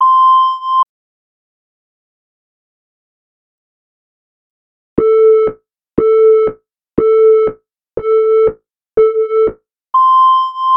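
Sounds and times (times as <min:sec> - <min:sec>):
Alpine clock beeps: 0:05.0 - 0:10.7.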